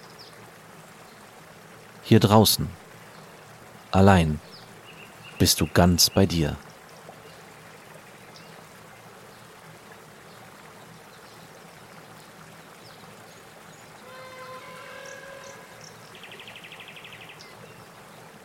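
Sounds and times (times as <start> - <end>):
soft murmuring river water on a river trip: 0.0 - 18.4
speech: 2.1 - 2.8, 3.9 - 4.6, 5.4 - 6.7
songbird chirps: 2.1 - 18.4
songbird trill: 14.0 - 17.6.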